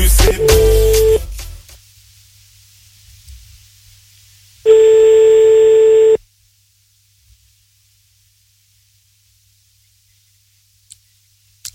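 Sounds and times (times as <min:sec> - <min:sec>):
telephone line tones as a number is redialed: 0:00.3 - 0:01.2, 0:04.7 - 0:06.2.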